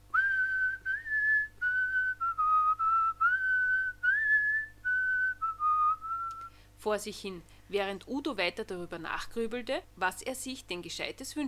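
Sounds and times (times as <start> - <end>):
little man whistling a meandering tune: 0.1 - 6.6
speech: 6.8 - 11.4.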